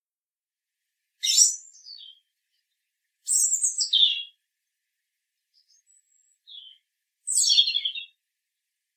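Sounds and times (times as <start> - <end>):
European robin Erithacus rubecula singing: 1.2 - 4.4, 5.4 - 8.7.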